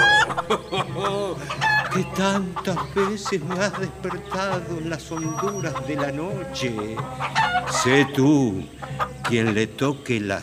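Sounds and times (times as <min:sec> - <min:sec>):
laughter: 0:00.0 - 0:09.8
rooster clucking and cackling: 0:00.0 - 0:10.0
speech: 0:00.5 - 0:10.4.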